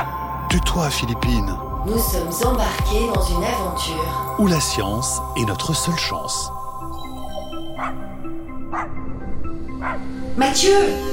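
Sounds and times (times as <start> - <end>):
speech: 0.5 - 7.0, 9.9 - 11.1
sled dogs barking and yipping: 7.7 - 9.1, 9.8 - 10.1.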